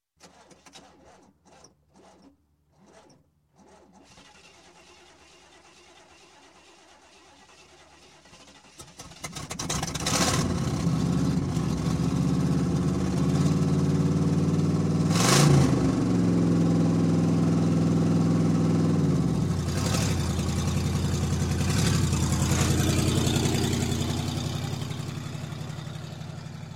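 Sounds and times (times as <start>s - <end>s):
bad car exhaust: 10.0s - 26.7s.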